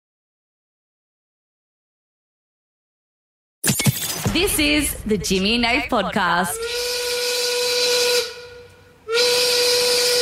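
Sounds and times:
speech: 0:04.4 - 0:07.1
steam whistle signalling quitting time: 0:06.5 - 0:10.1.

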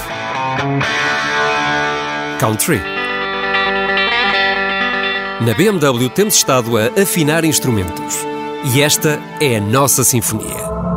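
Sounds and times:
rock music with heavily distorted electric guitar: 0:00.0 - 0:05.7
speech: 0:00.6 - 0:01.0, 0:02.4 - 0:03.0, 0:05.4 - 0:10.9.

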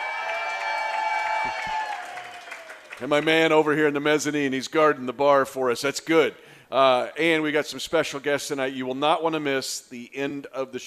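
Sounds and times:
high shouts in crowd: 0:00.0 - 0:02.8
sellout crowd cheering: 0:00.0 - 0:03.0
speech: 0:03.0 - 0:10.8.

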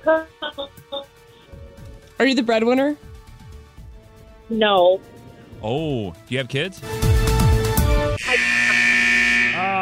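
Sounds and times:
speech: 0:00.0 - 0:01.1, 0:02.2 - 0:03.1, 0:04.5 - 0:07.0
loud sustained electronic buzzer: 0:08.2 - 0:09.7.

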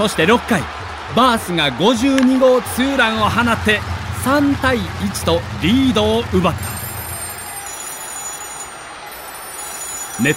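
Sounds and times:
speech: 0:00.0 - 0:06.7, 0:10.2 - 0:10.3
many telephones ringing in a baseball stadium press box: 0:06.6 - 0:10.3.

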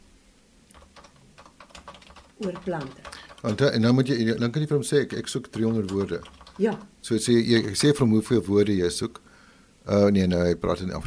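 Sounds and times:
fingers typing on a computer keyboard: 0:00.7 - 0:04.0, 0:05.2 - 0:06.9, 0:07.6 - 0:08.0
speech: 0:02.4 - 0:09.2, 0:09.8 - 0:11.0.

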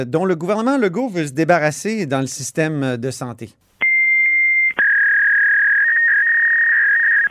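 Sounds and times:
speech: 0:00.0 - 0:03.7
fax machine tones from a fax used in the health care system: 0:03.8 - 0:07.2.

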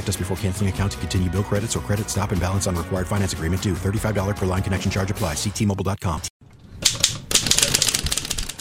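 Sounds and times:
speech: 0:00.0 - 0:06.5
typewriter keys clattering in a typewriter repair shop: 0:06.8 - 0:08.5.

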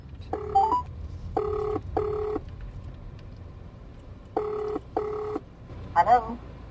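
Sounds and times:
low hum: 0:00.0 - 0:06.6
electronic telephone dialing tones: 0:00.3 - 0:02.4, 0:04.4 - 0:05.4
speech: 0:06.0 - 0:06.5.

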